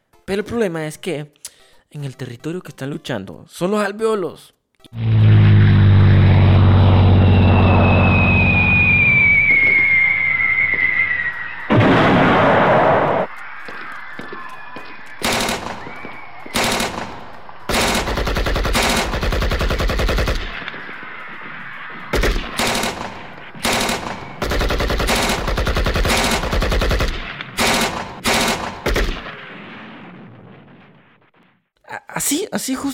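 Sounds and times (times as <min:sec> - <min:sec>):
speech: 0:00.3 - 0:05.2
intense battle blasts: 0:04.9 - 0:31.6
loud droning aircraft: 0:05.0 - 0:10.8
rising whistle: 0:05.0 - 0:18.1, 0:20.5 - 0:24.6
sharp irregular volleys of machine-gun fire: 0:15.2 - 0:20.7, 0:22.1 - 0:31.1.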